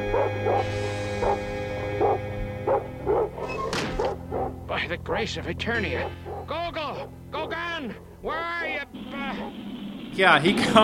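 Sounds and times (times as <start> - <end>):
dog barking: 0.0 - 4.6, 5.9 - 8.1, 9.1 - 9.6
speech: 4.9 - 6.3, 10.2 - 10.8.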